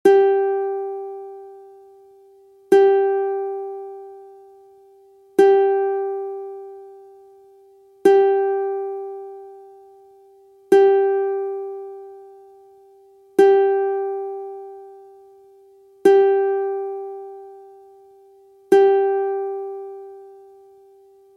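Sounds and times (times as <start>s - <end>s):
single ukulele string plucked: 0.0s - 1.7s, 2.7s - 4.5s, 5.4s - 7.0s, 8.0s - 9.8s, 10.7s - 12.5s, 13.4s - 15.2s, 16.0s - 18.0s, 18.7s - 21.3s.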